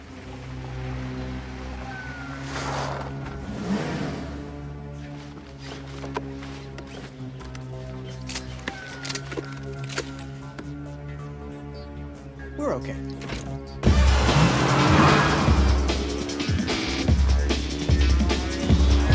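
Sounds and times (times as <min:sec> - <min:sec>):
car engine droning and revving: 0:00.0 - 0:06.4, 0:13.8 - 0:19.1
speech: 0:12.8 - 0:13.4.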